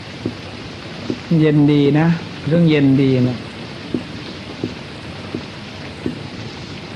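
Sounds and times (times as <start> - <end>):
steady rain falling: 0.0 - 6.9
soft low thumps: 0.2 - 1.3, 3.9 - 6.2
speech: 1.3 - 3.5.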